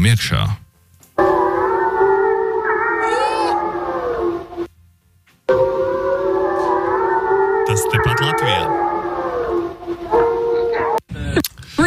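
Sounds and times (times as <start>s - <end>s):
speech: 0.0s - 0.6s
wolves howling: 1.2s - 4.7s, 5.5s - 11.0s.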